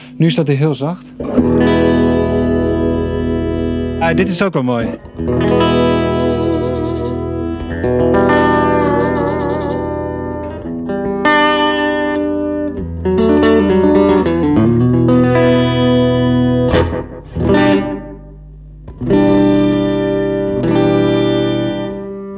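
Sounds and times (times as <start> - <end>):
speech: 0.2 - 2.0, 4.1 - 5.7
distorted electric guitar played through an amp: 1.2 - 22.3.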